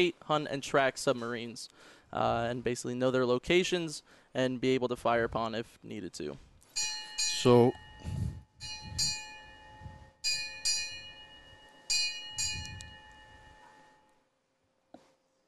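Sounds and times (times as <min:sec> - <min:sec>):
speech: 0:00.0 - 0:08.2
ship's bell ringing: 0:06.7 - 0:14.2.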